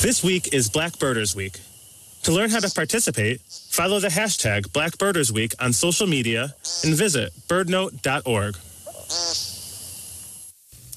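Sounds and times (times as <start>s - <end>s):
speech: 0.0s - 9.4s
woodcock giving a buzzy nasal peent call: 2.2s - 3.8s, 6.4s - 7.2s, 8.8s - 9.9s.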